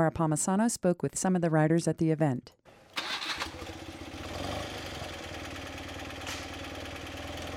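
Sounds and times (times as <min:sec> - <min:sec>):
speech: 0:00.0 - 0:02.8
BMW motorcycle engine cranking and settling into idle at a rally: 0:02.7 - 0:07.5.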